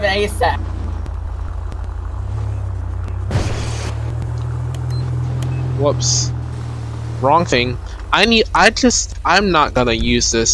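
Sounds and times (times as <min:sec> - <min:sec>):
speech: 0:00.0 - 0:00.7, 0:05.8 - 0:06.4, 0:07.2 - 0:10.5
SUV engine rumbling while driving: 0:00.0 - 0:10.5
burst of broadband noise: 0:03.2 - 0:04.3.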